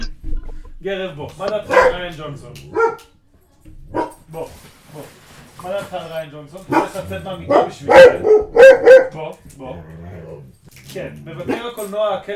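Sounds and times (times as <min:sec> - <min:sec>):
speech: 0:00.8 - 0:12.3
dog barking in short sharp bursts: 0:01.5 - 0:03.2, 0:03.9 - 0:04.4, 0:06.7 - 0:09.2.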